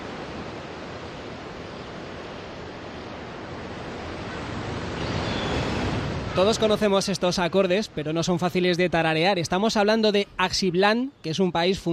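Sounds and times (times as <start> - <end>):
sea waves: 0.0 - 11.9
speech: 6.4 - 11.9.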